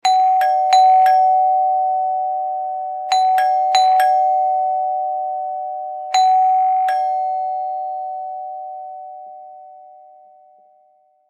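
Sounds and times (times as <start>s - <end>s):
ding dong doorbell ringing: 0.0s - 9.8s.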